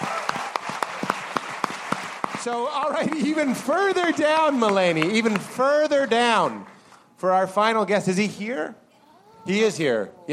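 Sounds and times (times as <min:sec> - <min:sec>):
audience clapping and applauding: 0:00.0 - 0:06.8
speech: 0:02.4 - 0:08.8, 0:09.4 - 0:10.3.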